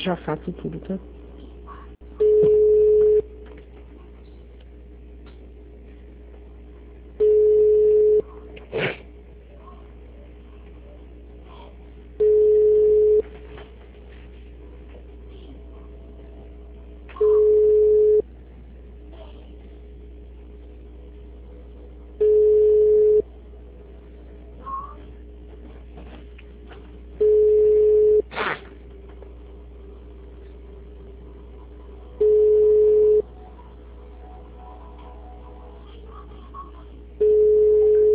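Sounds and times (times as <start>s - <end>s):
faint constant hum: 0.0s - 38.1s
speech: 0.1s - 1.2s
telephone line tone beeps while calling a city hall: 2.2s - 3.2s, 7.2s - 8.2s, 12.2s - 13.2s, 17.2s - 18.2s, 22.2s - 23.2s, 27.2s - 28.2s, 32.2s - 33.2s, 37.2s - 38.1s.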